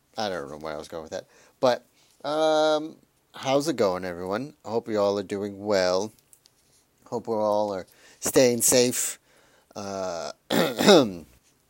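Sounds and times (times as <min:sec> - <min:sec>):
speech: 0:00.2 - 0:06.2, 0:07.1 - 0:09.2, 0:09.8 - 0:11.3
person clearing throat: 0:10.5 - 0:11.3.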